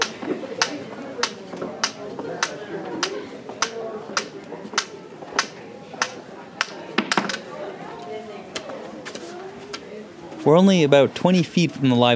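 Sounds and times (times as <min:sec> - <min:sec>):
cane tapping in a hallway with sound-muffling panels: 0:00.0 - 0:07.4
murmur of voices: 0:00.0 - 0:12.1
speech: 0:10.4 - 0:12.1.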